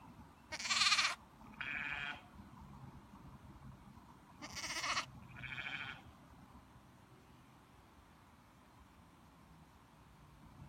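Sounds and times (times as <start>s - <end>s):
young lamb bleating: 0.5s - 2.2s, 4.4s - 6.0s.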